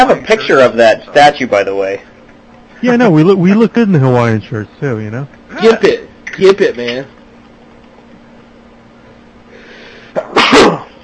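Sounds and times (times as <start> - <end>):
speech: 0.0 - 2.1, 2.8 - 7.2
single sharp loud sneeze with short intake breath: 10.2 - 11.0.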